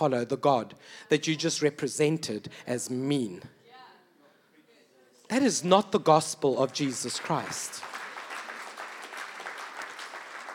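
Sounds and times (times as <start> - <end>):
speech: 0.0 - 3.6, 5.3 - 8.0
audience clapping at a Christian gathering: 6.6 - 10.5.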